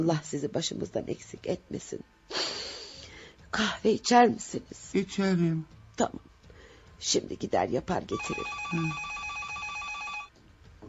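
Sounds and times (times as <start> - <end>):
speech: 0.0 - 2.7, 3.5 - 6.3, 7.0 - 9.1
quiet noise: 0.0 - 10.8
telephone bell ringing: 8.2 - 10.3.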